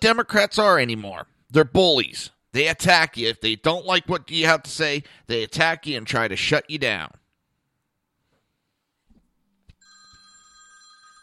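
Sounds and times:
speech: 0:00.0 - 0:07.2
telephone ringing with an electronic tone: 0:09.8 - 0:11.2.

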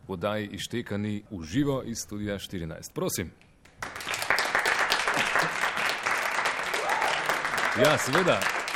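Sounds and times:
speech: 0:00.1 - 0:04.0, 0:07.8 - 0:08.6
small studio audience applauding: 0:03.8 - 0:08.7.

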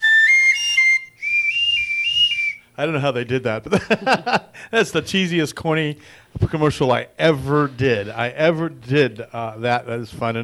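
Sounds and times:
toy Wiener whistle blowing: 0:00.0 - 0:02.7
speech: 0:02.8 - 0:10.4
laughter: 0:03.7 - 0:05.0.

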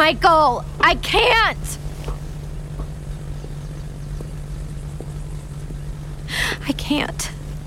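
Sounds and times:
small propeller plane engine droning: 0:00.0 - 0:07.6
speech: 0:00.1 - 0:01.8, 0:06.3 - 0:07.4.

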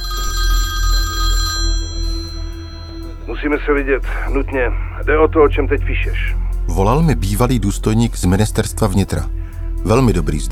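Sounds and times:
telephone bell ringing: 0:00.0 - 0:03.4
low hum: 0:00.0 - 0:09.7
speech: 0:03.4 - 0:10.5.

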